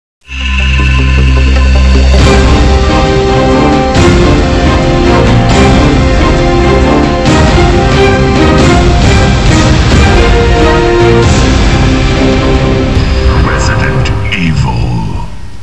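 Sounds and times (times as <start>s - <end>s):
intro music: 0.2s - 15.6s.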